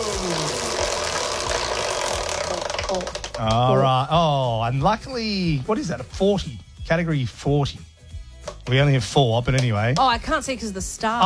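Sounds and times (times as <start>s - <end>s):
large prize wheel spinning during a quiz game: 0.0s - 4.0s
speech: 2.9s - 7.9s, 8.7s - 11.2s.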